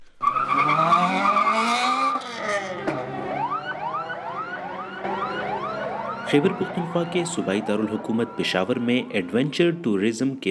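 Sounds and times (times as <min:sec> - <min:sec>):
high-pitched tyre screech of drag racing cars: 0:00.2 - 0:02.8, 0:05.6 - 0:09.5
cars and jeeps revving engines in a 400-metre drag race: 0:00.2 - 0:10.1
speech: 0:06.3 - 0:10.4.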